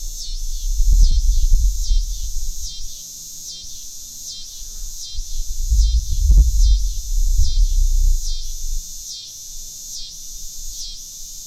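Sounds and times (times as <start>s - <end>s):
low thumps and rumbling: 0.0s - 2.7s, 5.2s - 8.8s
coastal scissor grinder cicada buzzing: 0.0s - 11.4s.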